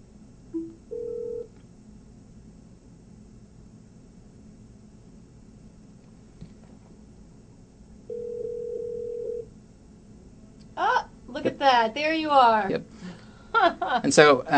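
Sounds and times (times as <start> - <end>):
phone call beep: 0.6 - 1.5, 8.1 - 9.4
speech: 11.6 - 13.0, 13.6 - 14.5.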